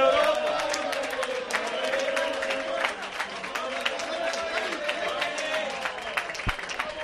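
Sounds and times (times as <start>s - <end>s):
diners' voices cheering and chattering: 0.0s - 7.0s
sustained applause from a crowd of restaurant diners: 0.0s - 7.0s.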